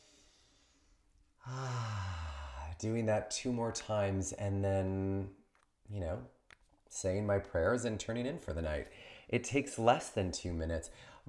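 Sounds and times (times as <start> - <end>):
person inhaling deeply while smelling an opened bottle of essential oil: 0.0 - 2.8, 10.9 - 11.2
speech: 1.4 - 1.8, 2.8 - 11.2.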